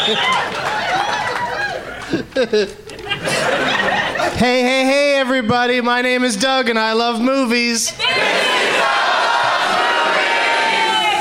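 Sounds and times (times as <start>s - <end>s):
comedy club audience in Portland Oregon cheering loudly: 0.0s - 2.1s, 8.0s - 11.1s
laughter: 0.0s - 4.5s
speech: 0.1s - 0.7s, 2.1s - 3.6s, 4.3s - 9.0s.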